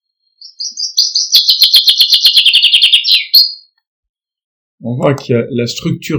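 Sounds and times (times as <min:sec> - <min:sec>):
common chaffinch singing: 0:00.3 - 0:03.8
speech: 0:04.8 - 0:06.1.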